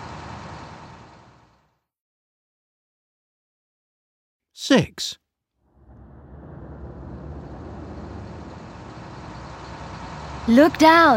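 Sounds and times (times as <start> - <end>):
bus engine roaring: 0.0 - 1.8, 5.6 - 11.1
speech: 4.6 - 5.2, 10.5 - 11.1.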